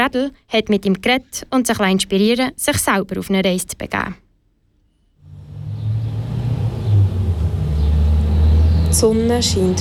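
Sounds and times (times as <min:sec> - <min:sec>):
speech: 0:00.1 - 0:04.2, 0:08.9 - 0:09.8
broadband road and tire noise: 0:05.2 - 0:09.8
car driving past on country road: 0:05.2 - 0:09.8.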